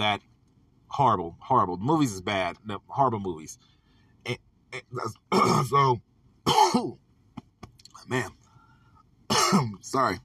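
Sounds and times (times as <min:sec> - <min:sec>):
speech: 0:00.0 - 0:00.3, 0:00.9 - 0:07.0, 0:08.1 - 0:08.4, 0:09.5 - 0:10.2
person clearing throat: 0:05.3 - 0:05.8, 0:06.5 - 0:07.0, 0:09.3 - 0:09.8
person coughing in a short fit: 0:05.3 - 0:05.8, 0:06.5 - 0:07.0, 0:09.3 - 0:09.8.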